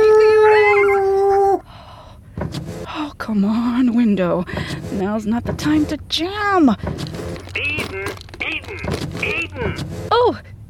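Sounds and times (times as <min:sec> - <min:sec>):
coyote howling: 0:00.0 - 0:01.6
speech: 0:03.3 - 0:07.2, 0:08.8 - 0:10.5.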